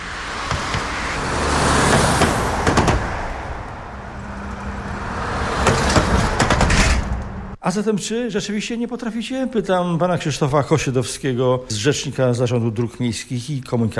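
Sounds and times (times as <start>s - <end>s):
steady road traffic with cars passing: 0.0s - 7.6s
speech: 7.7s - 13.9s.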